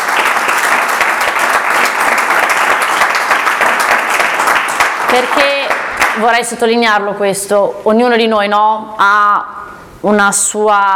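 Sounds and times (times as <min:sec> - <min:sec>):
sizable audience applause: 0:00.0 - 0:06.2
speech: 0:05.1 - 0:05.6, 0:06.2 - 0:10.9.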